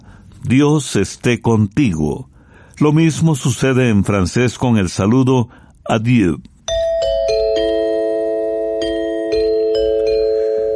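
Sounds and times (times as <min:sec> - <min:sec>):
speech: 0:00.5 - 0:06.5
bell-like chime jingle identifying a program segment: 0:06.7 - 0:10.7.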